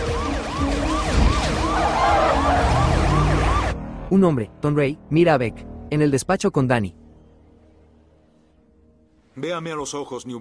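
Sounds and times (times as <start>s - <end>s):
car siren wailing: 0.0s - 4.0s
car engine roaring at full speed: 0.0s - 4.1s
speech: 4.1s - 7.0s, 9.4s - 10.3s.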